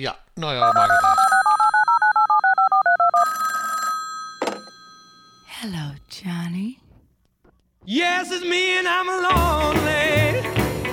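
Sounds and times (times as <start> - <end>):
speech: 0.0 - 1.3, 5.6 - 6.8, 7.9 - 10.2
electronic telephone ringing: 0.6 - 5.6.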